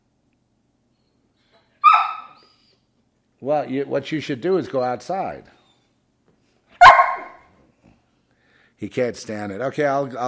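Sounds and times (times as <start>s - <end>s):
single loud dog bark: 1.8s - 2.4s, 6.8s - 7.5s
speech: 3.4s - 5.6s, 8.8s - 10.2s.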